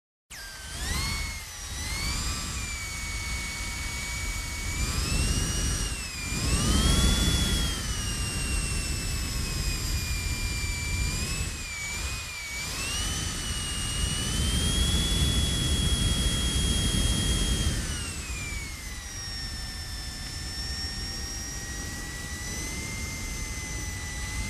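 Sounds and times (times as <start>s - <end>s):
device blowing air: 0.8s - 20.4s, 21.0s - 24.4s.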